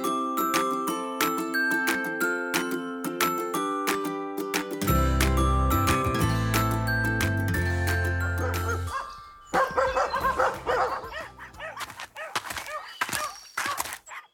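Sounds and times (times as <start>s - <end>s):
tonal music: 0.0s - 11.4s
dogs barking and yipping: 8.4s - 14.3s.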